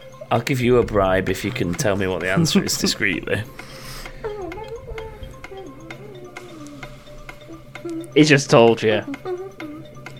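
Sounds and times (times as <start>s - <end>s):
game show countdown clock ticking: 0.1s - 10.1s
speech: 0.3s - 3.8s, 8.2s - 9.3s
low hum: 0.6s - 10.1s
faint wavering voice-like tone: 3.4s - 8.2s.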